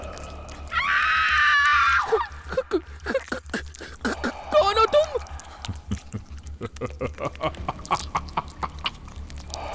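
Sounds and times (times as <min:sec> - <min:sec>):
low steady hum: 0:00.0 - 0:09.7
woman screaming in terror: 0:00.7 - 0:02.5.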